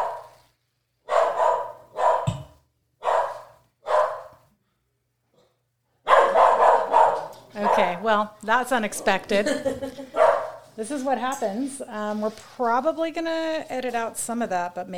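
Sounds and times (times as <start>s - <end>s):
dog barking: 0.0s - 0.4s, 1.0s - 4.4s, 6.0s - 8.1s, 10.1s - 10.7s
speech: 7.6s - 10.2s, 10.8s - 14.9s.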